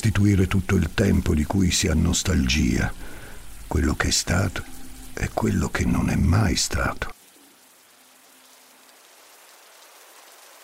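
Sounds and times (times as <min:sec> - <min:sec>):
speech: 0:00.0 - 0:07.2
distant rain: 0:00.0 - 0:10.6
shower water running: 0:00.0 - 0:10.6.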